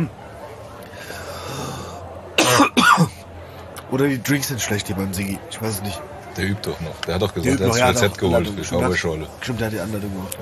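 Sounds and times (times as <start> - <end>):
speech: 0.0 - 0.2, 3.9 - 10.4
person coughing harsh breathy coughs: 2.4 - 3.1.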